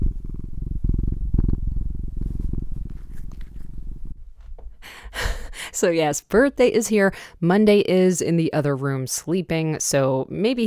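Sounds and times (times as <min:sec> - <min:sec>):
cat purring: 0:00.0 - 0:05.5
small clicks and rustles: 0:02.9 - 0:03.8
speech: 0:05.8 - 0:10.6.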